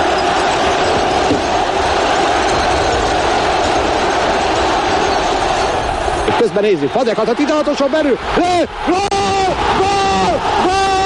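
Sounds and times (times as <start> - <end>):
70,000-strong stadium crowd roaring at a football match: 0.0 - 11.0
speech: 6.5 - 9.4.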